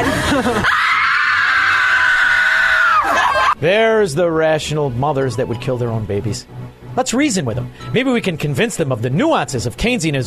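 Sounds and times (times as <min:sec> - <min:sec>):
laughter: 0:00.0 - 0:00.9, 0:02.9 - 0:03.6
speech: 0:00.4 - 0:00.8, 0:03.6 - 0:10.2
person screaming loudly: 0:00.6 - 0:03.6.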